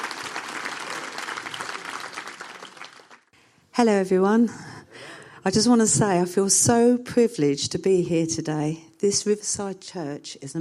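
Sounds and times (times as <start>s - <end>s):
audience applause in a church: 0.0s - 3.3s
speech: 3.8s - 4.7s, 5.4s - 10.5s.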